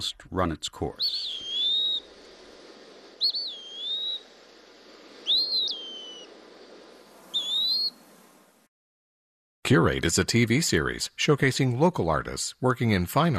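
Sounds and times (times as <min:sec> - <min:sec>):
speech: 0:00.0 - 0:01.4, 0:09.7 - 0:13.3
Eastern Wood-Pewee giving slow plaintive whistled calls in the woods: 0:01.0 - 0:02.1, 0:03.2 - 0:04.4, 0:05.2 - 0:06.3, 0:07.3 - 0:08.0.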